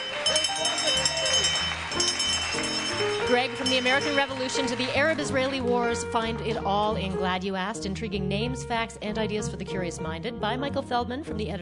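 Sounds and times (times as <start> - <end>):
cowbells clanking on a herd of cows leaving a concourse: 0.0 - 5.6
speech: 3.3 - 11.6.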